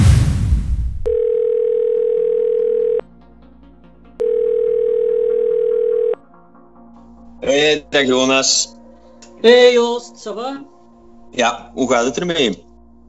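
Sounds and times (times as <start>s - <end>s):
ringback tone of an outgoing telephone call: 1.1s - 3.0s, 4.2s - 6.2s
speech: 7.4s - 8.8s, 9.4s - 10.7s, 11.3s - 12.6s.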